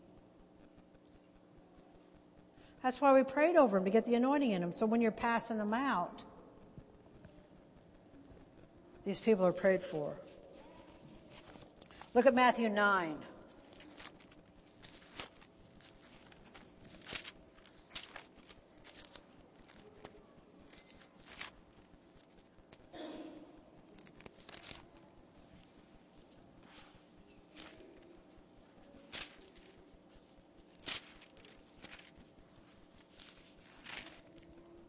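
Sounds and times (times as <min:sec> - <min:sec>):
speech: 0:02.8 - 0:06.3, 0:09.0 - 0:10.4, 0:12.2 - 0:13.3
Bible pages being flipped: 0:10.2 - 0:12.2, 0:13.4 - 0:22.8, 0:23.8 - 0:34.8.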